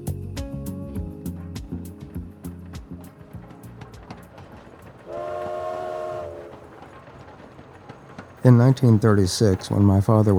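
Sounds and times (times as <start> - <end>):
train wheels clattering on rails: 1.3 - 10.3
train horn blast: 5.1 - 6.7
speech: 8.4 - 10.3.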